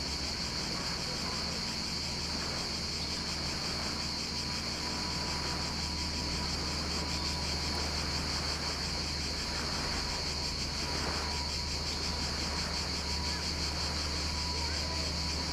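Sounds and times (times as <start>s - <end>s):
cicadas buzzing at Vourvourou Sithonia Greece: 0.0s - 15.5s
low background hum: 0.0s - 15.5s.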